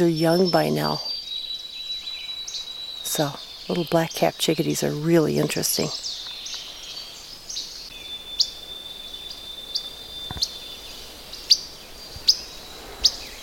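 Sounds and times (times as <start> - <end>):
speech: 0.0 - 1.1, 3.2 - 6.1
Least Flycatcher whit call notes: 0.0 - 13.4.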